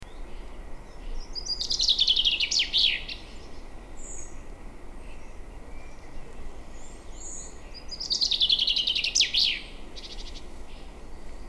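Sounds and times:
common chaffinch Fringilla coelebs singing descending trills: 0.0 - 11.4
low background noise: 0.0 - 11.4.

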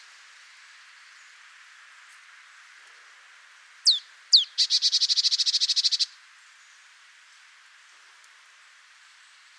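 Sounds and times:
marsh tit calling, Poecile palustris: 3.9 - 5.9.

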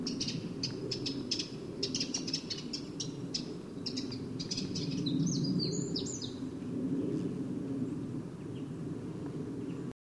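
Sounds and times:
Eurasian wren giving sharp dry tick calls: 0.0 - 6.3
steady low background noise: 0.0 - 9.9.

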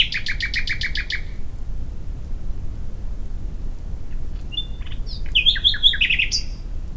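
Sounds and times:
common nightingale song: 0.0 - 1.5, 4.1 - 6.9
low rumble: 0.0 - 6.9.

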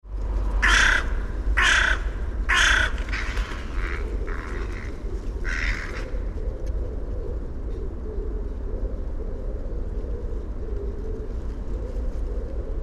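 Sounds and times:
steady low background rumble: 0.0 - 12.8
carrion crow Corvus corone cawing: 0.6 - 6.3.

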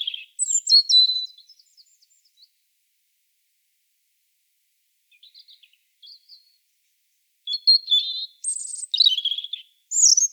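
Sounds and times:
European robin Erithacus rubecula singing: 0.0 - 2.5, 5.1 - 6.6, 7.5 - 10.3.

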